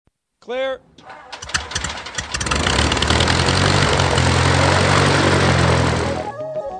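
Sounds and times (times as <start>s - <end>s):
speech: 0.4s - 1.4s
propeller airplane engine flying overhead: 1.3s - 6.3s.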